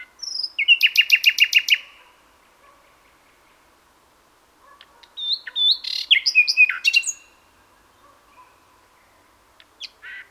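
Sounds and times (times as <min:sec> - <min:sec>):
Luscinia megarhynchos common nightingale singing: 0:00.0 - 0:02.0, 0:04.8 - 0:07.4, 0:08.4 - 0:10.2.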